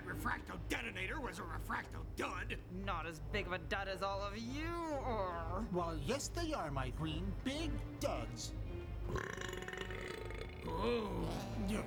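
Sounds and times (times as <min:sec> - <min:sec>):
speech: 0:00.1 - 0:09.6, 0:10.7 - 0:11.8
long loud drawn-out burp: 0:09.1 - 0:11.5.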